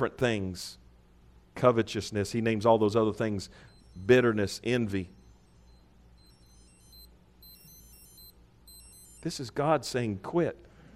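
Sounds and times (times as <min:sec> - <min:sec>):
speech: 0:00.0 - 0:00.8, 0:01.6 - 0:05.2, 0:09.2 - 0:10.7
low steady hum: 0:00.0 - 0:10.9
wristwatch alarm beeping: 0:03.3 - 0:09.6.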